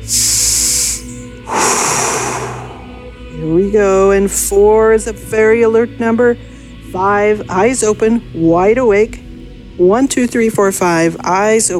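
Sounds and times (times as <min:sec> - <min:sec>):
deep cleansing breaths: 0:00.0 - 0:03.4
speech: 0:03.6 - 0:09.2, 0:09.8 - 0:11.7.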